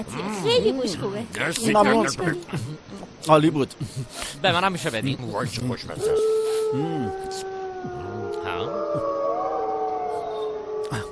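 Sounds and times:
speech: 0:00.0 - 0:09.1
outdoor noise: 0:00.0 - 0:11.1
alpha wolf howling to its mate: 0:06.0 - 0:11.1.

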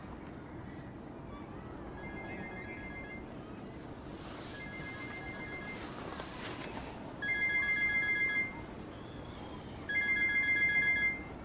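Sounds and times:
phone ringtone for an incoming call: 0:02.0 - 0:03.3, 0:04.6 - 0:05.9, 0:07.2 - 0:08.6, 0:09.9 - 0:11.3.

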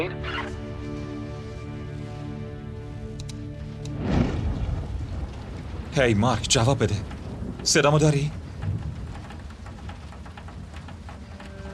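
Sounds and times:
heavy rain: 0:00.0 - 0:11.7
speech: 0:06.0 - 0:08.4.

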